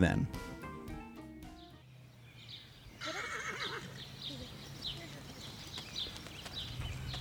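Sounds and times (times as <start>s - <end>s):
speech: 0.0s - 0.5s
horse whinnying: 3.0s - 4.1s
hooves clip-clopping: 3.0s - 7.1s.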